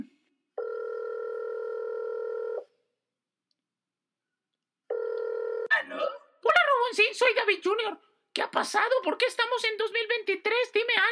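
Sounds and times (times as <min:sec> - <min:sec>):
telephone dial tone: 0:00.6 - 0:02.7, 0:04.9 - 0:05.7
speech: 0:07.0 - 0:11.1.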